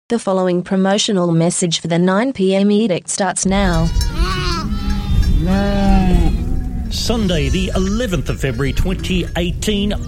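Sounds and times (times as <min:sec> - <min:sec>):
speech: 0:00.1 - 0:04.5, 0:05.4 - 0:06.2, 0:06.9 - 0:10.0
goats bleating: 0:03.5 - 0:10.0.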